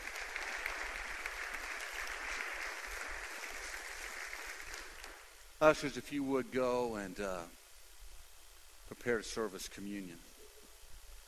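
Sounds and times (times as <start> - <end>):
large crowd applauding during a worship service: 0.0 - 5.3
speech: 5.6 - 7.6, 9.0 - 10.3.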